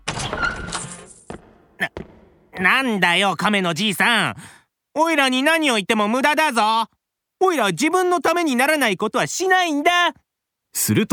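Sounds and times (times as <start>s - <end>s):
heavy prison cell door grinding open with metallic scrape: 0.0s - 1.2s
prison cell door clanking as it settles: 0.0s - 2.6s
speech: 2.6s - 11.1s.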